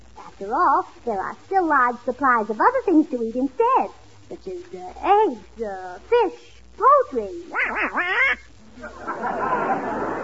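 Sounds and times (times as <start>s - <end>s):
speech: 0.4s - 10.1s
loud nasal duck quack: 7.5s - 8.5s
laughter: 8.1s - 10.2s.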